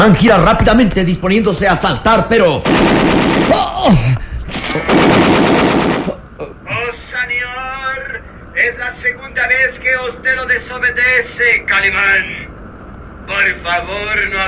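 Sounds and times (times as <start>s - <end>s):
speech: 0.0s - 5.7s, 9.1s - 12.4s, 13.3s - 14.4s
gunshots as a radio-drama sound effect: 2.6s - 6.2s.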